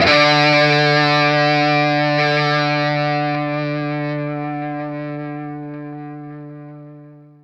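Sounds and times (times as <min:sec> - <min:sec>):
single D note on vintage blues electric guitar: 0:00.0 - 0:07.4.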